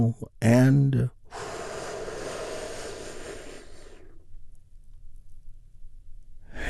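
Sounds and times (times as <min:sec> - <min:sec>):
speech: 0:00.0 - 0:01.5
deep slow breathing during a guided breathing exercise: 0:01.2 - 0:04.4, 0:06.4 - 0:06.6.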